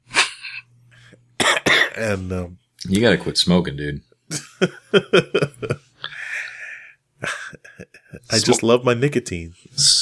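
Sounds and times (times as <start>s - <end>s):
harsh coughing: 1.4s - 2.0s
speech: 2.0s - 5.7s, 8.3s - 10.0s
laughter: 4.3s - 5.9s.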